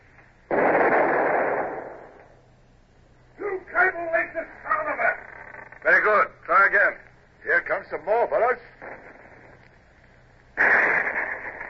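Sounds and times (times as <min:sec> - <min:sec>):
ship's long nine cannon firing from the forecastle: 0:00.5 - 0:02.4, 0:10.6 - 0:11.6
men's voices: 0:03.4 - 0:08.8.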